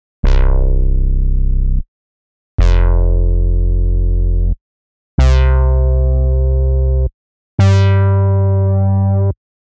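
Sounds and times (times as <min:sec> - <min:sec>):
fat splat synth bass on a modular synthesizer: 0:00.2 - 0:01.8, 0:02.6 - 0:04.6, 0:05.2 - 0:09.4.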